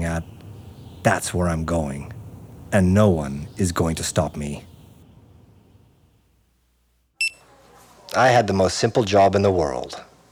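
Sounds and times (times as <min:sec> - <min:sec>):
speech: 0:01.0 - 0:04.7, 0:08.2 - 0:10.1
kitchen timer beep for flipping burgers: 0:07.2 - 0:07.4.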